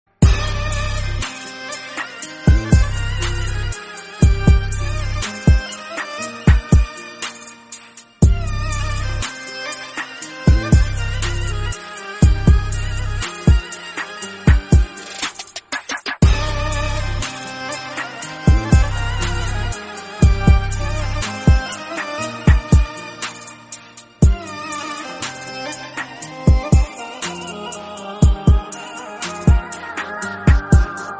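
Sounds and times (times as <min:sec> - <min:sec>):
sad Arabic violin over a beat: 0:00.2 - 0:31.1.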